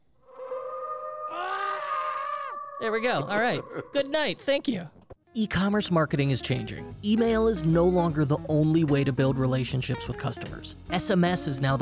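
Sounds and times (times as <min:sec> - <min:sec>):
sustained eerie wolf-like howl: 0:00.2 - 0:04.4
man's loud strained yell: 0:02.8 - 0:04.6
speech: 0:02.8 - 0:11.8.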